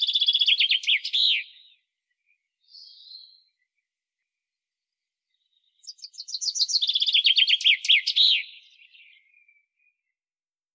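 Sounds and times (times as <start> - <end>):
common chaffinch Fringilla coelebs singing: 0.0 - 1.8, 5.8 - 9.3.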